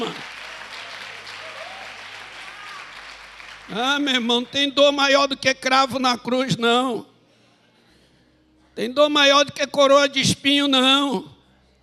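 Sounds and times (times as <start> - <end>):
speech: 0.0 - 0.3, 3.7 - 7.1, 8.8 - 11.3
audience applauding: 0.0 - 4.5.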